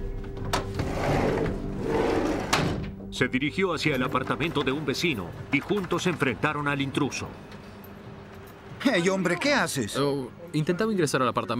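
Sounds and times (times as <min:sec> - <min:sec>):
back door scraping and rumbling as it swings: 0:00.5 - 0:02.9
speech: 0:03.2 - 0:07.6, 0:08.8 - 0:11.5.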